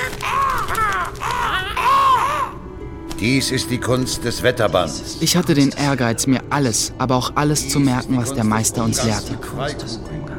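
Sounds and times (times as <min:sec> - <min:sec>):
ravens cawing: 0:00.0 - 0:02.7
speech: 0:03.2 - 0:10.2.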